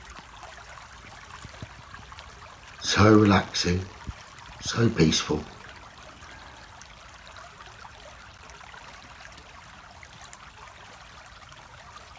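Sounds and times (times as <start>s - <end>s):
stream water trickling: 0.0s - 12.1s
speech: 2.9s - 4.0s, 4.7s - 5.5s.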